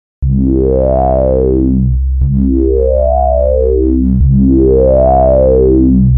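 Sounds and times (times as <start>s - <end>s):
resonance sweep: 0.2s - 6.1s.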